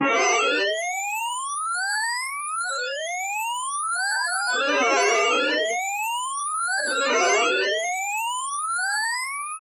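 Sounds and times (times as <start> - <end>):
arcade: 0.0 - 9.6.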